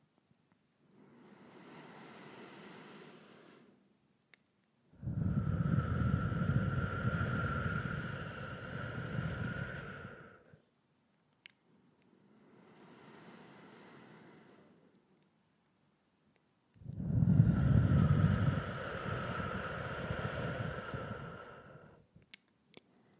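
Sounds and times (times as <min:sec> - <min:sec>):
slow deep breathing through nose and parted lips: 0:00.8 - 0:03.9, 0:04.9 - 0:10.7, 0:12.0 - 0:15.0, 0:16.7 - 0:23.1.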